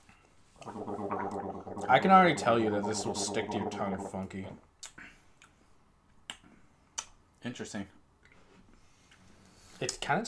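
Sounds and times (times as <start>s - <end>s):
person gargling a creamy caffeinated drink: 0.6s - 4.3s
speech: 1.9s - 4.7s, 7.4s - 8.0s, 9.8s - 10.2s.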